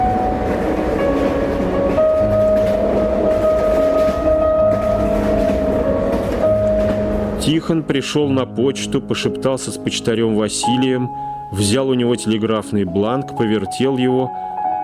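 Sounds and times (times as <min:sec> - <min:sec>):
steam train rushing past: 0:00.0 - 0:11.4
speech: 0:07.6 - 0:14.6.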